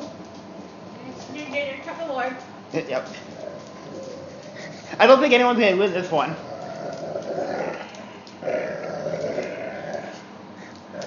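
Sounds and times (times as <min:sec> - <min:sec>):
speech: 0:01.6 - 0:03.4, 0:04.9 - 0:06.5
two dogs growling while wrestling in play: 0:03.2 - 0:05.2, 0:06.0 - 0:11.0.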